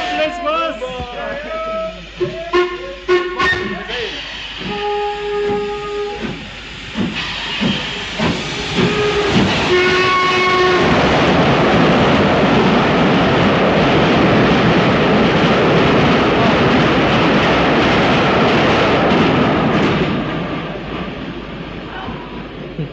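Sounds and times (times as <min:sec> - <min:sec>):
murmuring voices at a small junction station: 0:00.0 - 0:04.7
hiss of steam as the steam train pulls away: 0:01.6 - 0:13.2
steam train whistle at a small junction station: 0:01.7 - 0:06.5, 0:08.4 - 0:11.0
clatter at a small junction station: 0:04.4 - 0:22.9.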